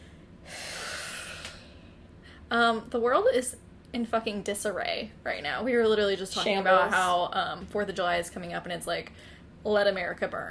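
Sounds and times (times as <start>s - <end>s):
deep breath drawn in: 0.0s - 2.4s
speech: 2.5s - 10.5s.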